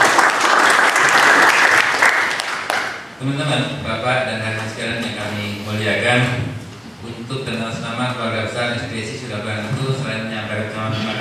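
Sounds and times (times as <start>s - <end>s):
audience applause at a labour union gathering: 0.0s - 3.0s
speech: 3.2s - 11.1s.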